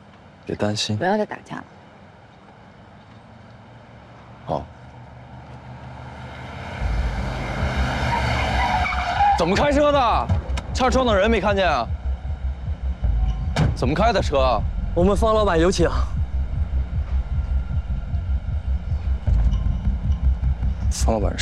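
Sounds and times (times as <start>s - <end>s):
car tires screeching as a vehicle skids on the road: 6.0s - 10.8s
steady low rumble: 6.1s - 21.4s.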